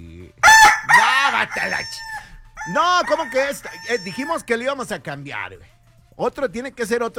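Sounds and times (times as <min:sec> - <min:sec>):
rooster crowing: 0:00.4 - 0:04.5
speech: 0:01.4 - 0:07.1.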